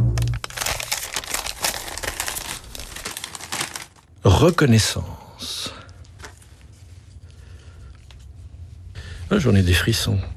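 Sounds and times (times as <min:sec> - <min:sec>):
small slips of paper rustling and crinkling as they are unfolded: 0:00.2 - 0:04.6, 0:06.0 - 0:07.2
speech: 0:04.4 - 0:05.2, 0:09.3 - 0:10.3.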